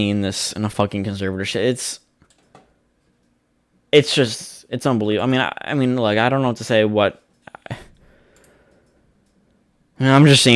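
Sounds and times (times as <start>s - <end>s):
speech: 0.0s - 2.0s, 3.9s - 7.9s, 10.0s - 10.5s
faint steady hum: 0.0s - 10.5s
computer mouse clicks: 2.2s - 3.4s, 8.3s - 9.6s.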